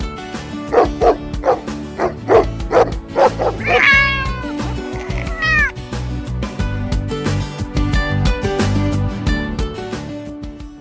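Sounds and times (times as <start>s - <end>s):
steady musical background: 0.0s - 10.7s
one-year-old dog barking in sharp yips: 0.7s - 4.5s
cat meowing: 3.5s - 5.8s.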